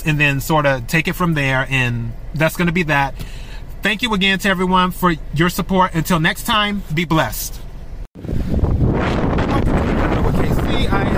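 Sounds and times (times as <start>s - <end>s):
speech: 0.0s - 7.6s
wind buffeting a microphone outdoors: 8.2s - 11.1s.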